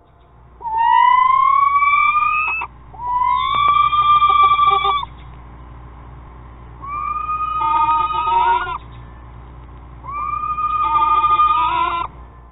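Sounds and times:
screech owl screeching calls: 0:00.0 - 0:05.5, 0:06.7 - 0:12.5.

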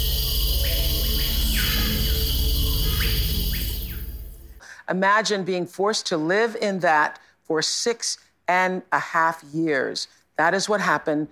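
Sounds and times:
Amazon rainforest insects buzzing and trilling: 0:00.0 - 0:04.6
speech: 0:04.9 - 0:11.3.

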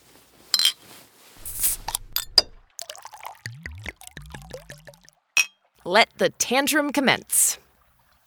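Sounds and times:
clinks: 0:00.6 - 0:00.8, 0:05.4 - 0:05.6
whiskey pouring from a bottle: 0:01.4 - 0:05.2
speech: 0:05.9 - 0:07.6.

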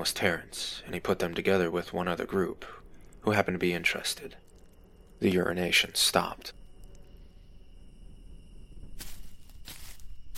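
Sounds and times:
speech: 0:00.0 - 0:04.4, 0:05.2 - 0:06.6
steady insect-like hum: 0:00.0 - 0:10.3
heavy footsteps crunching over rough ground at a campsite: 0:08.9 - 0:10.3.

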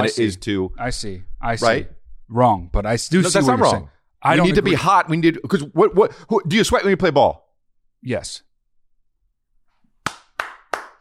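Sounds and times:
speech: 0:00.0 - 0:07.4, 0:08.0 - 0:08.5
single person hand claps: 0:10.0 - 0:10.9.

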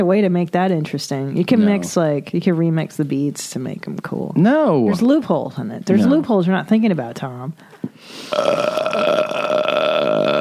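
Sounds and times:
speech: 0:00.0 - 0:09.5
long loud burp: 0:08.3 - 0:10.3.

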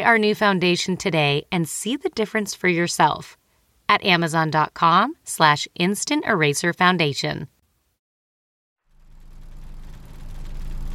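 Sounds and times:
speech: 0:00.0 - 0:07.6
amusement park ride car motor idling: 0:08.9 - 0:10.9.

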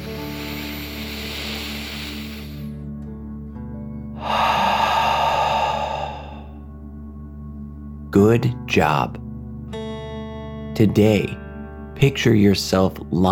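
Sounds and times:
deep breath drawn in during a children's meditation breathing exercise: 0:00.0 - 0:02.9, 0:04.1 - 0:06.7
speech: 0:08.2 - 0:09.2, 0:10.8 - 0:11.4, 0:12.0 - 0:13.3.

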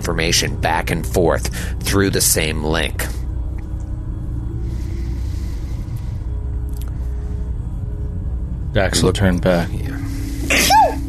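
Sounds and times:
low steady hum: 0:00.0 - 0:11.0
speech: 0:00.1 - 0:03.2, 0:08.7 - 0:10.7
person sneezing: 0:10.5 - 0:11.0.

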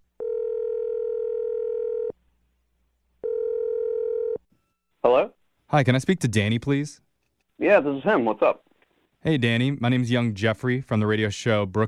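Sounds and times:
long steady telephone ringing tones: 0:00.2 - 0:02.1, 0:03.2 - 0:04.4
speech: 0:05.7 - 0:11.8.

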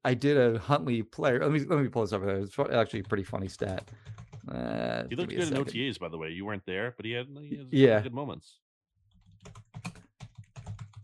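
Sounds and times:
speech: 0:00.0 - 0:08.6, 0:09.4 - 0:09.7
typing on a computer keyboard: 0:02.9 - 0:04.4, 0:09.1 - 0:11.0.

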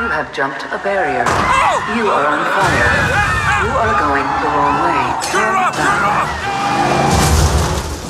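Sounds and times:
speech: 0:00.1 - 0:07.1
race car crashing with grinding booming noise: 0:05.7 - 0:08.0.

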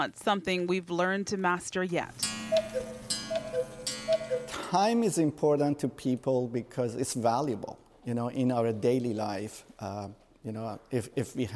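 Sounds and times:
speech: 0:00.0 - 0:11.5
clock ticking: 0:02.2 - 0:04.7.

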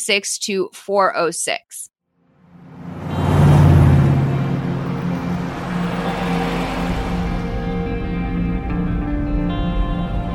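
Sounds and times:
speech: 0:00.0 - 0:01.9
low road rumble of a car driving through a small town: 0:02.2 - 0:10.3
car engine hum driving through a small town in Chehalis Washington: 0:02.3 - 0:10.3.

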